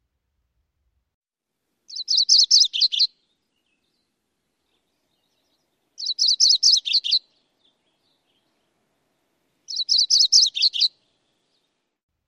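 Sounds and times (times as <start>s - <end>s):
bird song of high sweet chirped notes: 1.9s - 11.8s.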